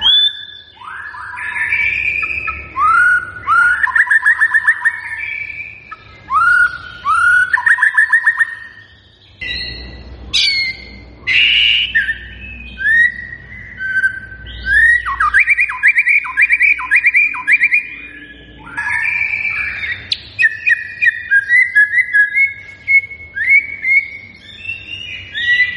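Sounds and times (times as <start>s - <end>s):
White-rumped shama song of varied whistled phrases from lure recording: 0.0s - 25.7s.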